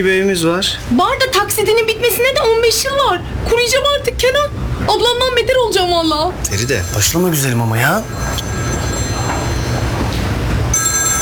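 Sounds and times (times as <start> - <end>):
speech: 0.0 - 8.9
telephone ringing with an incoming call: 6.5 - 11.2.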